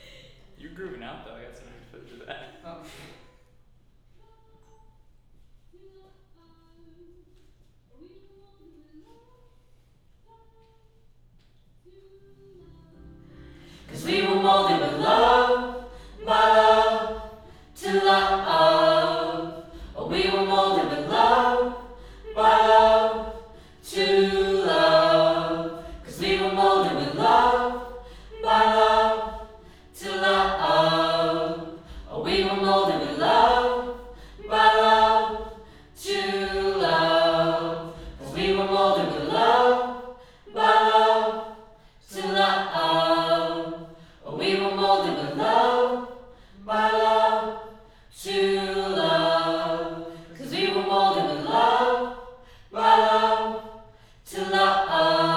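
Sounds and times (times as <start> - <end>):
choir singing: 12.5 - 55.3.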